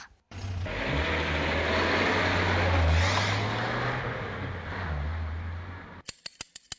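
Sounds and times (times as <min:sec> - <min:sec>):
car engine running: 0:00.3 - 0:06.0.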